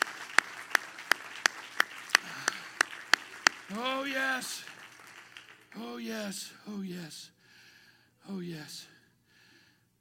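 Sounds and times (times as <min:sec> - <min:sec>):
audience clapping in unison: 0:00.0 - 0:06.4
speech: 0:03.7 - 0:04.7, 0:05.8 - 0:07.4, 0:08.2 - 0:08.9.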